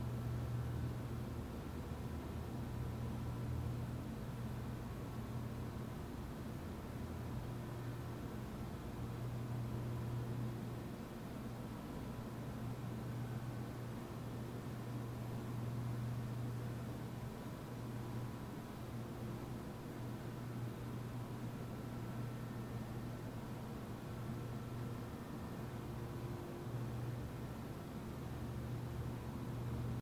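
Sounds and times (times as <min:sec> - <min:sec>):
endless dull hum of production work: 0:00.0 - 0:29.9.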